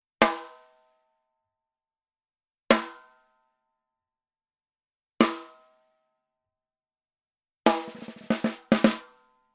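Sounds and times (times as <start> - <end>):
snare drum power center rim shot: 7.7 - 9.0.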